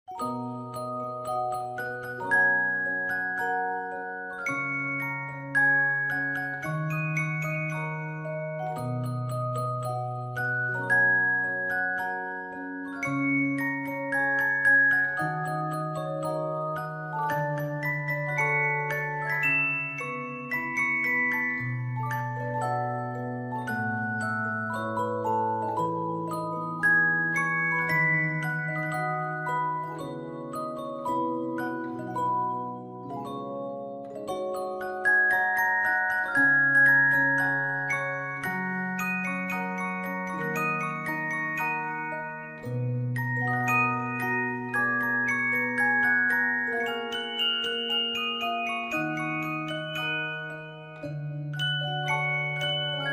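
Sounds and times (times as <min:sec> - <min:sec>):
music box melody: 0:00.1 - 0:53.1.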